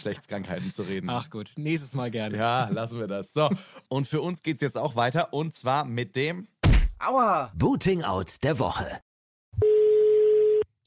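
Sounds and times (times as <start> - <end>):
speech: 0.0 - 9.7
electronic telephone ringing tone on the line: 9.6 - 10.7.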